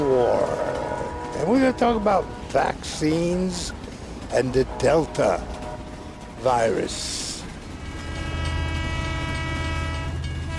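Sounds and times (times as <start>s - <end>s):
train horn: 0.0s - 3.0s, 4.7s - 6.6s, 7.7s - 10.5s
moving train rumbling: 0.0s - 10.5s
speech: 1.7s - 5.6s, 6.4s - 7.3s.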